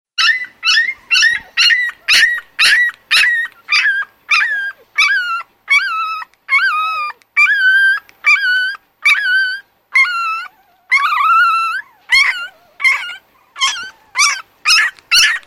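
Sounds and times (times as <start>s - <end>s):
dog giving high whining yelps: 0.2s - 15.4s.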